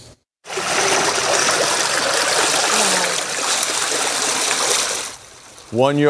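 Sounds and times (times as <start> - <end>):
rushing floodwater of an overflowing creek: 0.5 - 6.0.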